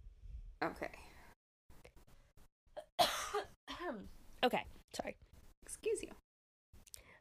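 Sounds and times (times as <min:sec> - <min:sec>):
speech: 0:00.6 - 0:01.1, 0:03.3 - 0:05.2
breathing: 0:01.0 - 0:01.4, 0:06.9 - 0:07.1
loud hacking cough: 0:02.8 - 0:03.6.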